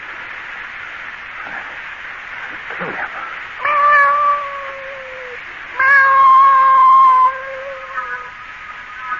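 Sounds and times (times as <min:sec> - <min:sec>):
cat caterwauling: 0:03.6 - 0:08.4.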